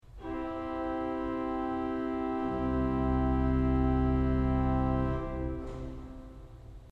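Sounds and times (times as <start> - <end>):
piano: 0.0 - 6.8.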